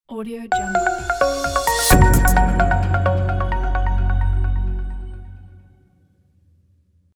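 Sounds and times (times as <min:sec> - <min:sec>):
branding logo jingle: 0:00.5 - 0:05.6.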